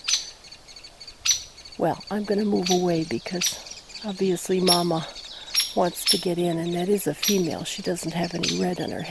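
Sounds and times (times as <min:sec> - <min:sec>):
hairy woodpecker peek calls: 0:00.0 - 0:09.1
speech: 0:01.8 - 0:05.2, 0:05.8 - 0:09.1.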